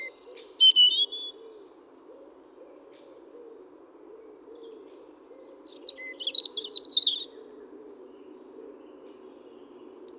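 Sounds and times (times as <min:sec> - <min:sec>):
European robin Erithacus rubecula singing: 0:00.0 - 0:01.4, 0:05.7 - 0:07.3.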